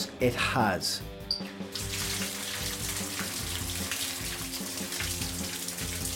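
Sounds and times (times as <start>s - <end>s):
speech: 0.2s - 1.5s
ice-cold water gushing from a tap into a bath in a bathroom: 1.7s - 6.1s.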